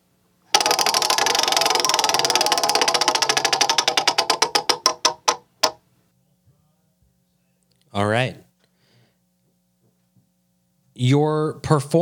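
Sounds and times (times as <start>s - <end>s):
prize wheel pointer ticking while spinning: 0.5s - 5.8s
speech: 8.0s - 8.4s, 11.0s - 11.9s.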